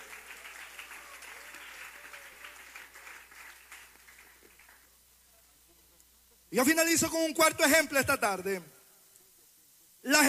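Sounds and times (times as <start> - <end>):
church audience applauding during a sermon: 0.0 - 5.0
speech: 6.5 - 8.8, 10.0 - 10.2.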